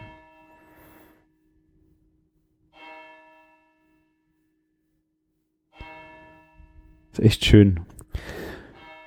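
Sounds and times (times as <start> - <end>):
church bell tolling the hour: 0.0 - 0.9, 2.7 - 4.2, 5.7 - 7.8, 8.5 - 9.0
speech: 7.2 - 8.4.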